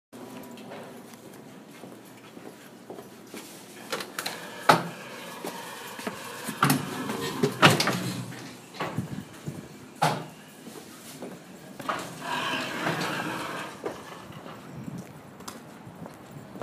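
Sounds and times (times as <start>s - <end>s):
doors in a dorm building: 3.7s - 14.7s.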